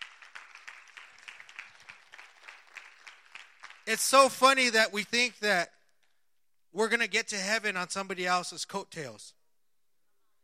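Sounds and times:
church audience clapping: 0:00.0 - 0:04.6
speech: 0:03.9 - 0:05.8, 0:06.8 - 0:09.4.

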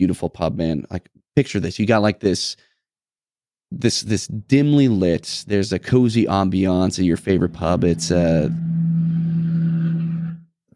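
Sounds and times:
speech: 0:00.0 - 0:02.7, 0:03.7 - 0:08.8
heavy truck engine driving past outside: 0:06.9 - 0:10.5.

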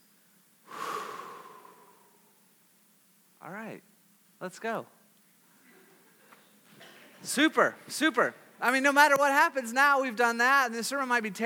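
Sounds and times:
deep breath drawn through the nose: 0:00.6 - 0:02.4
speech: 0:03.7 - 0:05.0, 0:07.2 - 0:11.4.

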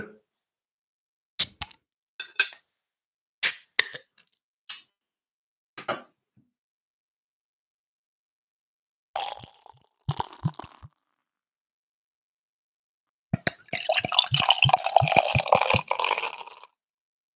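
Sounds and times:
light beer being poured into a glass: 0:09.2 - 0:10.9, 0:13.5 - 0:16.7.

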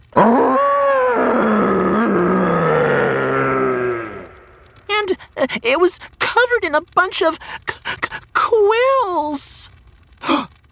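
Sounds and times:
monster growling: 0:00.0 - 0:06.2
speech: 0:05.6 - 0:07.7, 0:08.6 - 0:09.6.

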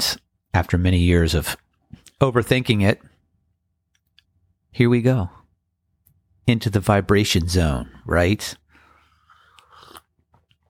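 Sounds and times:
speech: 0:00.0 - 0:01.6, 0:02.2 - 0:03.1, 0:04.7 - 0:05.4, 0:06.4 - 0:08.6
person sipping coffee: 0:08.8 - 0:10.6
swallow: 0:09.2 - 0:10.2
wet mouth clicks: 0:09.4 - 0:10.2.

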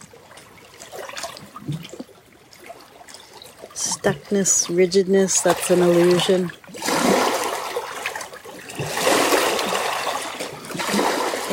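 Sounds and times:
water trickling and gurgling beneath frozen winter ice by a shore: 0:00.0 - 0:11.5
speech: 0:04.0 - 0:06.6.

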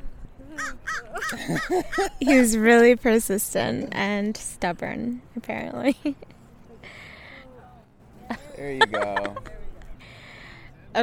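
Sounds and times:
laughter: 0:00.5 - 0:02.7, 0:08.2 - 0:10.0
speech: 0:00.5 - 0:07.0, 0:08.3 - 0:09.6
crow or raven giving harsh rasping caws: 0:00.6 - 0:02.1.

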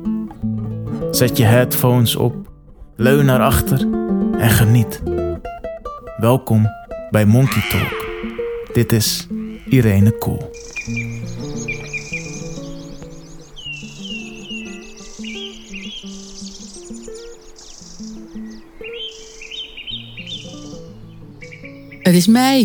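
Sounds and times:
speech: 0:01.2 - 0:05.1, 0:06.2 - 0:08.0, 0:08.8 - 0:11.2, 0:22.2 - 0:22.6
chorus of birdsong in spring: 0:06.2 - 0:22.3.

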